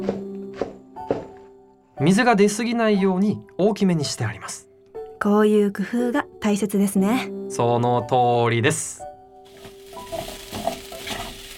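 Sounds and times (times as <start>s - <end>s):
speech: 2.0s - 9.0s
minced meat and chunky-cut vegetables sizzling in a frying pan: 9.4s - 11.5s
stirring scrapes in a frying pan: 9.5s - 11.5s.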